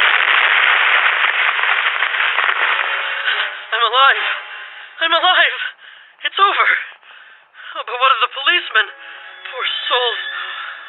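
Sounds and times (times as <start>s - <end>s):
car explosion after falling into ravine: 0.0s - 4.8s
speech: 4.0s - 7.0s, 7.7s - 10.8s.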